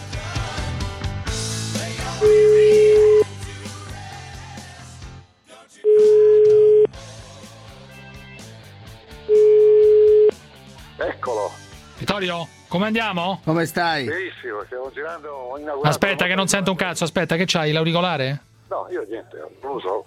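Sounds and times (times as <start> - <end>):
loud music: 0.0 - 20.0
ringing tone of a telephone call being placed: 2.2 - 3.3, 5.8 - 6.9, 9.3 - 10.4
speech: 12.2 - 20.0.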